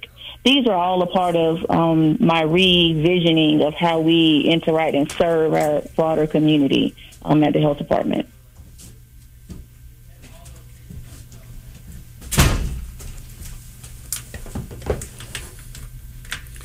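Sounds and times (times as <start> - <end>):
low hum: 0.0 - 16.6
speech: 0.4 - 8.3
door closing thud: 12.3 - 12.9.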